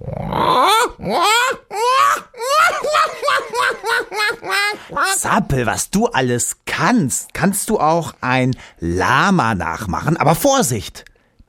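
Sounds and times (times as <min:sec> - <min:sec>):
human voice imitating black-headed gull calls: 0:00.0 - 0:03.0
laughter: 0:01.1 - 0:05.4
speech: 0:05.2 - 0:11.4.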